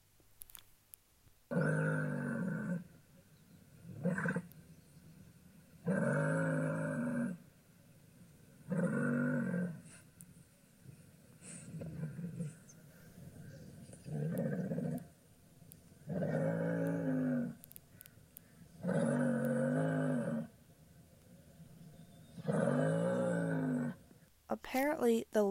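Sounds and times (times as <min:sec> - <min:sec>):
muskox roaring: 0:01.5 - 0:03.1, 0:03.7 - 0:04.7, 0:05.8 - 0:07.5, 0:08.5 - 0:10.1, 0:11.4 - 0:15.2, 0:16.0 - 0:17.7, 0:18.5 - 0:20.7, 0:21.3 - 0:24.2
speech: 0:24.7 - 0:25.4.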